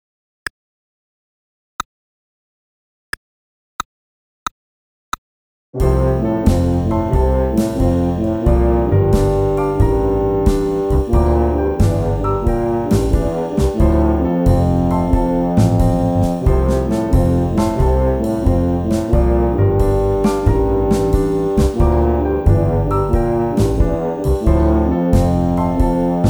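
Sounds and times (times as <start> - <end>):
tuba melody: 5.8 - 26.2.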